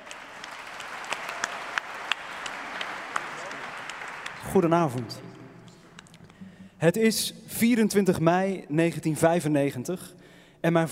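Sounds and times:
crowd applauding: 0.0s - 6.1s
speech: 4.5s - 5.4s, 6.8s - 10.8s.

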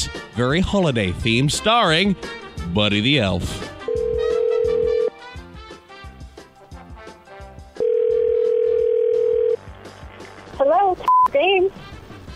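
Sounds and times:
speech: 0.0s - 3.7s
rhythmic music: 0.0s - 12.3s
telephone dial tone as a prank phone call is placed: 3.9s - 5.1s, 7.8s - 9.6s.

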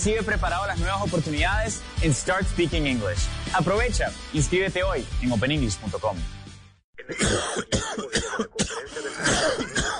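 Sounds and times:
speech: 0.0s - 6.4s, 7.1s - 7.8s
person clearing throat: 7.0s - 9.9s
person coughing in harsh rapid bursts: 7.0s - 9.9s.

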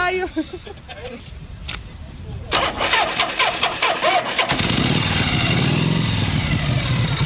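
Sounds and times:
Harley motorcycle engine cranking and sputtering on a very cold day: 2.5s - 7.2s.

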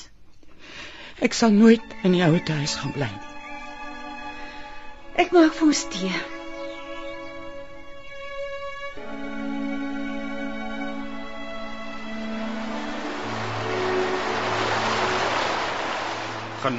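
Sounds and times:
speech: 1.2s - 3.3s, 5.2s - 6.3s
rushing flooded river water: 9.9s - 16.7s.

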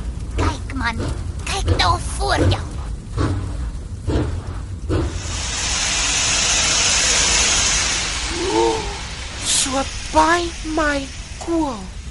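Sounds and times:
heavy rhythmic chuffs of a steam train: 0.4s - 12.0s
speech: 0.8s - 3.3s, 10.8s - 12.0s
steam train hissing as it pulls in: 4.9s - 12.0s.

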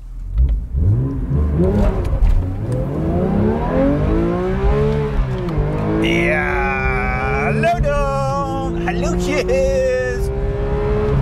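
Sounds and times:
Porsche 911 GT3 Touring engine revving through its gears: 0.3s - 11.2s.

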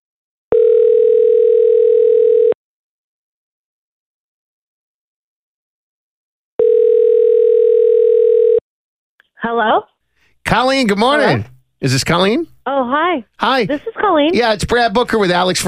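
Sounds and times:
telephone dial tone while placing a call: 0.5s - 2.6s, 6.6s - 8.6s
speech: 9.4s - 9.9s, 10.5s - 15.6s.

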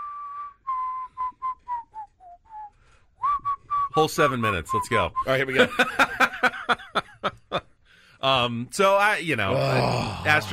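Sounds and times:
person whistling a song melody: 0.0s - 4.0s
speech: 4.0s - 6.8s, 8.2s - 10.5s
laughter: 5.5s - 7.6s.

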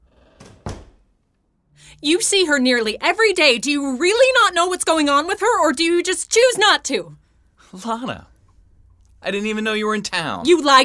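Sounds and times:
door swinging shut with a solid thud: 0.0s - 1.1s
speech: 1.9s - 8.3s, 9.2s - 10.8s.

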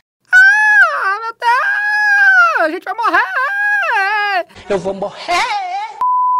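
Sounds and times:
person imitating a desperate scream with their voice: 0.3s - 4.4s
speech: 4.7s - 5.6s.

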